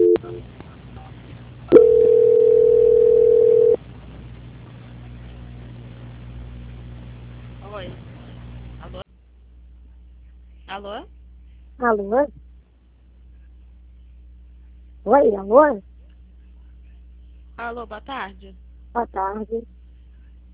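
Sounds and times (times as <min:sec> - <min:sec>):
steady telephone line tone during call transfer: 0:00.0 - 0:00.4, 0:01.7 - 0:03.8
quiet hum on the telephone line: 0:00.0 - 0:20.5
speech: 0:11.9 - 0:12.4, 0:15.1 - 0:15.9, 0:17.6 - 0:19.8.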